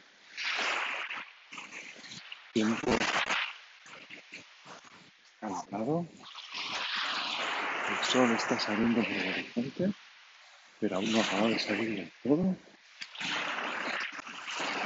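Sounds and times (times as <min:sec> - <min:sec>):
calm seawater lapping at the shore in the early morning: 0:00.0 - 0:05.1, 0:06.2 - 0:09.6, 0:12.9 - 0:14.8
speech: 0:02.6 - 0:03.3, 0:05.5 - 0:06.3, 0:08.0 - 0:10.0, 0:10.8 - 0:12.7.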